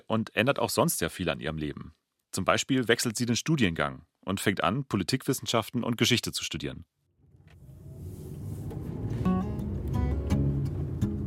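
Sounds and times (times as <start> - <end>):
speech: 0.1 - 7.0
car engine rumble inside a moving car: 7.2 - 11.2
road noise from inside a moving car: 7.3 - 11.2.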